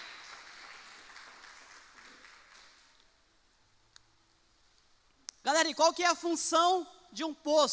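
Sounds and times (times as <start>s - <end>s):
crowd clapping at an evening prayer gathering: 0.0s - 3.0s
speech: 5.6s - 7.7s.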